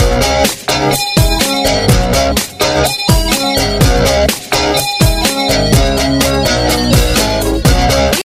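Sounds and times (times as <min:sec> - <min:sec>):
Tamil ringtone: 0:00.0 - 0:08.2.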